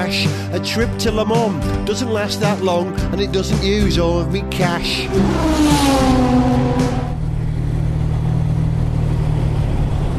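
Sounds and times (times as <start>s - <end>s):
speech: 0.1s - 6.7s
XK150 sports car engine and exhaust burble driving up a ferry ramp: 4.6s - 10.1s.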